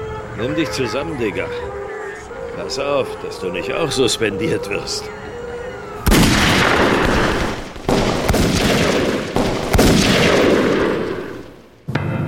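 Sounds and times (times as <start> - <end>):
speech: 0.4 - 1.8, 2.6 - 5.3
gunshots in a crime radio drama: 6.1 - 12.2.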